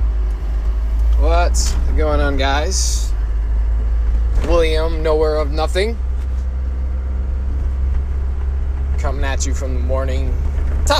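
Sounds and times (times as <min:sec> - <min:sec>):
road noise from inside a moving truck: 0:00.0 - 0:10.9
truck engine rumble from inside a moving truck: 0:00.0 - 0:10.9
speech: 0:01.5 - 0:03.1, 0:04.4 - 0:06.1, 0:09.0 - 0:10.9.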